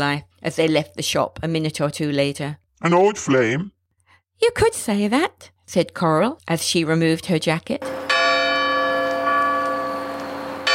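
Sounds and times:
speech: 0.0 - 3.8, 4.4 - 8.1
large town square clock bell striking: 7.8 - 10.7.

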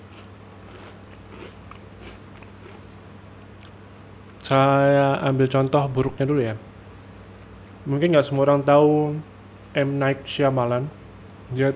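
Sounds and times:
chewing and crunching a snack: 0.0 - 3.0
low steady hum: 0.0 - 11.7
speech: 4.5 - 6.7, 7.9 - 11.7.

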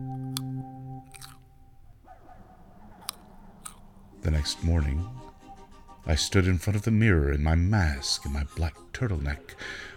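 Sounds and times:
low steady hum: 0.0 - 5.4
chewing of a crunchy snack: 0.3 - 1.5, 3.0 - 3.9
speech: 4.2 - 5.3, 6.1 - 9.9.

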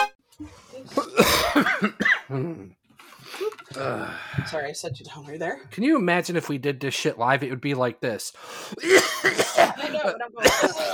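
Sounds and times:
person coughing harshly and throatily: 0.9 - 2.7, 8.8 - 10.9
speech: 4.5 - 10.9.

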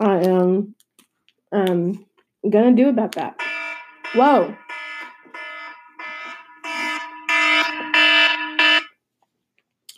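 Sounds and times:
speech: 1.5 - 3.5, 4.1 - 4.6
phone alarm ringing in buzzy electronic bursts: 3.3 - 9.0.

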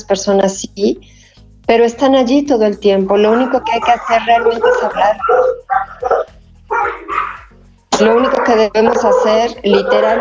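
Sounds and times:
speech: 0.0 - 5.6, 8.0 - 10.1
dog barking: 3.2 - 10.1.

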